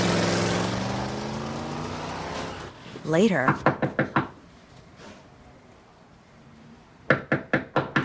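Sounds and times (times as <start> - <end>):
car engine humming as it pulls away along a street: 0.0 - 2.8
speech: 3.1 - 3.8
knocking on a house's front door: 3.5 - 4.3, 7.1 - 8.0.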